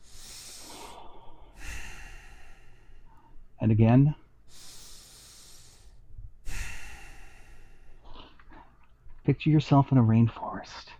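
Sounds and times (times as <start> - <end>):
slow deep breath in and out: 0.0 - 3.5, 4.4 - 8.8
speech: 3.6 - 4.2, 9.3 - 10.9.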